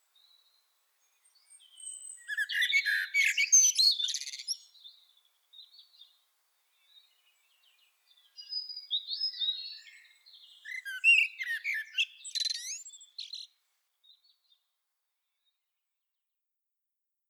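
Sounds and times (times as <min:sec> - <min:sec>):
Common blackbird giving squeaky scratchy twitters and high chirping phrases: 0:01.8 - 0:04.7, 0:08.4 - 0:13.5.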